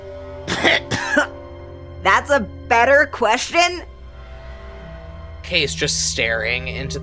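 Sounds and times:
harsh wet-sounding coughs from coughing up water: 0:00.5 - 0:01.4
speech: 0:02.0 - 0:03.9, 0:05.5 - 0:07.0.

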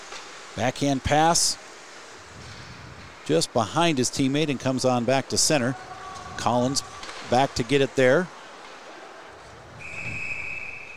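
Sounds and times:
speech: 0:00.6 - 0:01.6, 0:03.3 - 0:08.4
referee's whistle blast for icing in hockey: 0:09.8 - 0:10.9.

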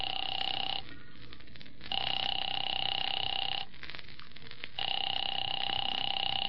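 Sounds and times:
telephone ringing in electronic bursts: 0:00.0 - 0:01.1, 0:01.9 - 0:03.7, 0:04.8 - 0:06.4.

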